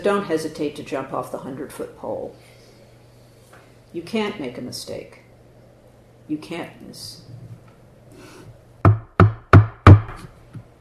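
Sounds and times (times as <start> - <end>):
speech: 0.0 - 2.6, 3.9 - 5.2, 6.3 - 7.4
firm knocks on a door: 8.8 - 10.3.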